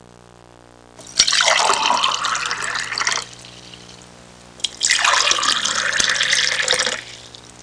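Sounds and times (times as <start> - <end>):
household container being filled: 1.0 - 4.0, 4.6 - 7.5.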